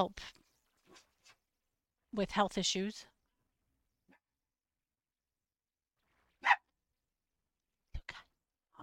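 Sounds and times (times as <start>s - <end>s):
speech: 0.0s - 0.4s, 2.1s - 3.1s
dog barking: 6.4s - 6.7s.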